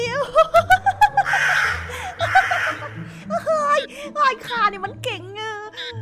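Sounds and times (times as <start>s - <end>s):
laughter: 0.2s - 3.3s
crow cawing loudly: 1.2s - 3.1s.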